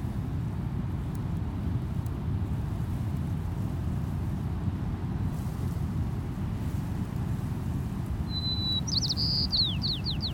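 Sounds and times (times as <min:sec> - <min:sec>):
wind in the dune grass: 0:00.0 - 0:10.3
white-crowned sparrow singing: 0:08.3 - 0:10.3.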